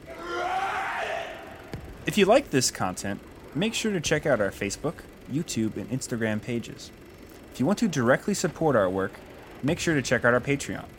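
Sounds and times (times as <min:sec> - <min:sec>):
man screaming: 0:00.0 - 0:01.7
speech: 0:02.1 - 0:07.0, 0:07.6 - 0:10.9.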